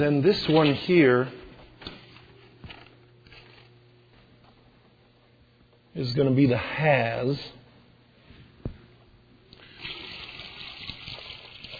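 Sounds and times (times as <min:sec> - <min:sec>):
speech: 0:00.0 - 0:01.4, 0:06.0 - 0:07.6
water pouring from a pitcher into a gallon jar: 0:09.6 - 0:11.7.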